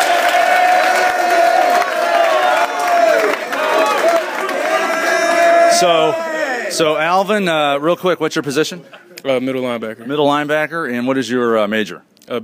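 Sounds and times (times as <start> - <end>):
large crowd clapping: 0.0 - 6.1
large crowd cheering and shouting: 0.0 - 7.1
speech: 5.8 - 12.4.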